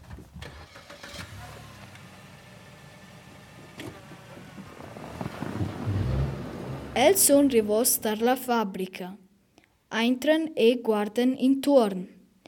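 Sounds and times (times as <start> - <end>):
car engine starting: 0.0 - 8.1
wind buffeting: 4.0 - 8.1
speech: 7.0 - 9.2, 10.0 - 12.2.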